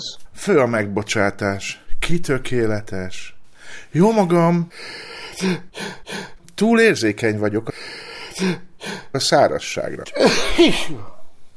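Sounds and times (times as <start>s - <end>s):
speech: 0.0s - 11.1s
person sneezing: 10.2s - 11.3s.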